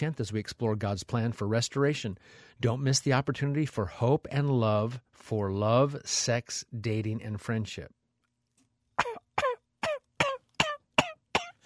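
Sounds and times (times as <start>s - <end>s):
speech: 0.0s - 8.0s
deliberate forced coughs: 9.0s - 11.6s.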